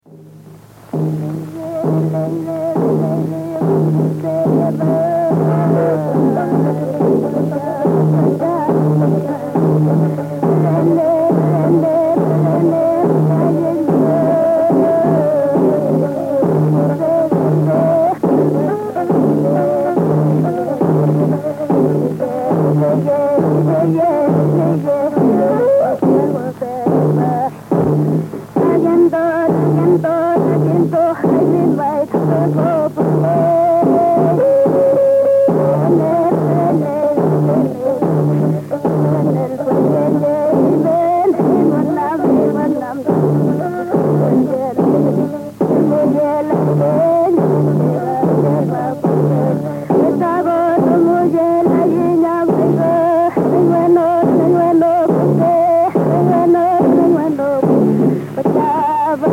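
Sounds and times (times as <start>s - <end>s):
kultrun drum in Mapuche music: 0.0s - 59.3s
woman singing Mapuche music: 0.9s - 59.3s.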